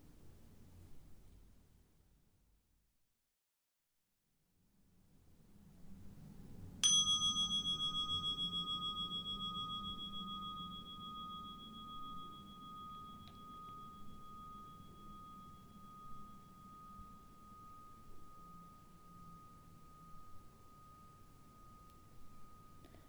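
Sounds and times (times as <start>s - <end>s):
meditation bell ringing: 6.8s - 23.0s.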